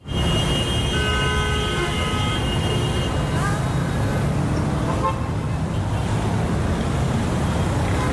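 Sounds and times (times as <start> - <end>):
car horn blaring and honking: 0.0 - 3.2
busy street traffic rumbling: 0.0 - 8.1.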